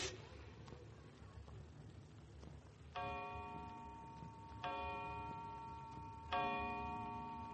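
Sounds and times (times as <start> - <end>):
faint clock ticking: 0.6 - 7.5
clock striking resonant chimes: 2.9 - 7.5.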